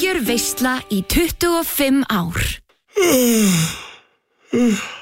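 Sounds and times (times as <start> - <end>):
speech: 0.2 - 3.9, 4.5 - 5.0
voiced human yawn: 2.9 - 5.0.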